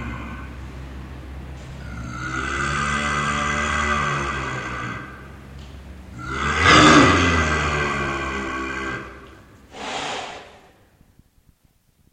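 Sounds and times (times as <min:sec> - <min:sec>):
clouded leopard giving a harsh roaring moan: 0:00.0 - 0:00.9, 0:01.8 - 0:05.3, 0:06.1 - 0:10.8
clouded leopard breathy exhalation: 0:09.7 - 0:10.9.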